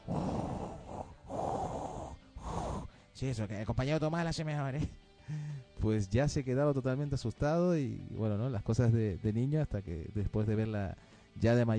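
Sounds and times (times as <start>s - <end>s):
person imitating heavy mechanical respirator breathing: 0.0s - 3.1s
speech: 3.2s - 11.7s.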